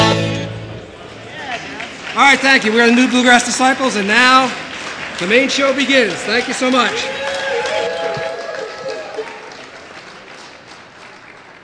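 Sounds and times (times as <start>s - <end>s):
live audience clapping after a live band: 1.4s - 11.6s
speech: 2.2s - 4.6s, 5.2s - 7.2s.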